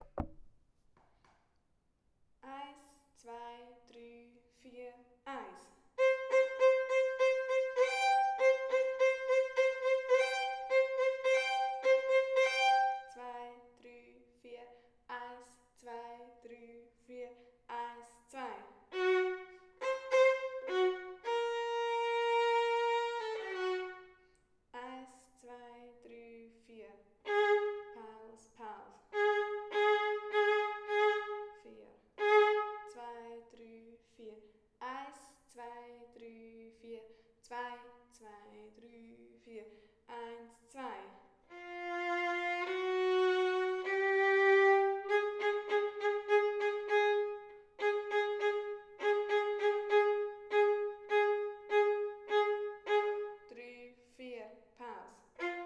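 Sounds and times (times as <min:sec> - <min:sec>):
violin in a children's orchestra: 0:06.0 - 0:13.2, 0:18.9 - 0:24.2, 0:27.2 - 0:28.2, 0:29.1 - 0:31.6, 0:32.2 - 0:33.0, 0:41.5 - 0:53.5, 0:55.4 - 0:55.6.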